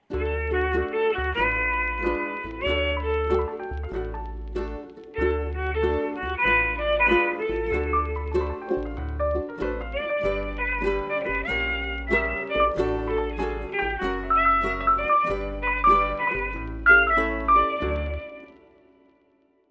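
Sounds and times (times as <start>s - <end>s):
jazz violin: 0.0s - 18.7s.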